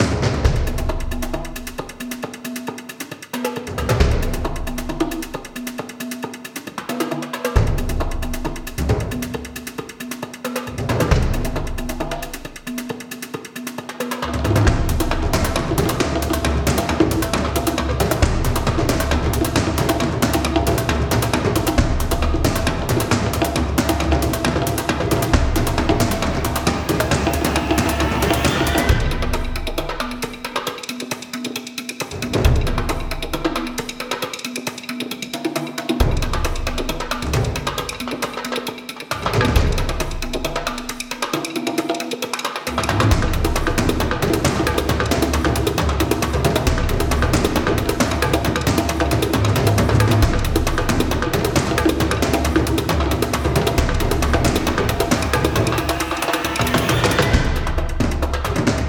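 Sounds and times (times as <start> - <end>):
big percussion loop: 0.0 - 58.8.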